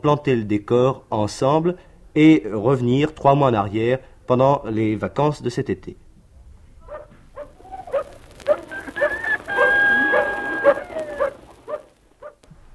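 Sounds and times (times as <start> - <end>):
speech: 0.0 - 6.0
dog barking at the doorstep of a farm in central France: 6.8 - 12.4
rooster-like call: 6.9 - 12.0.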